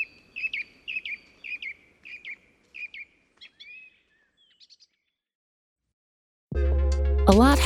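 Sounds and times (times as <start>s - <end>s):
bird singing bright repeated chirping notes: 0.0s - 5.2s
speech: 7.3s - 7.6s.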